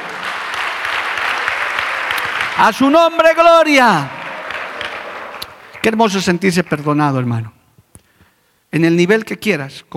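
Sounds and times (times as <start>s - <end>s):
crowd applauding: 0.0s - 6.4s
speech: 2.6s - 4.2s, 5.8s - 7.6s, 8.7s - 9.9s.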